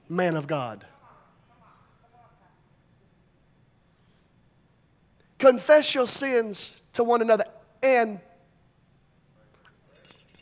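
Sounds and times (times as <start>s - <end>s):
speech: 0.1s - 1.0s, 5.4s - 8.3s
keys jangling as they are pulled out: 9.8s - 10.4s.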